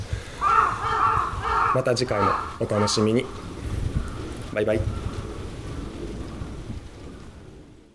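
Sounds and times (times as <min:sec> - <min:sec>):
crow cawing loudly and harshly: 0:00.0 - 0:06.5
speech: 0:01.7 - 0:03.5, 0:04.5 - 0:05.0.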